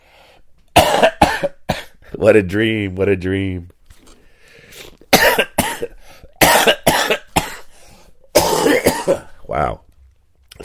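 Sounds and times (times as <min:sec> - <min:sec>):
harsh coughing: 0:00.7 - 0:02.0, 0:05.1 - 0:07.7, 0:08.3 - 0:09.4
speech: 0:02.2 - 0:03.8.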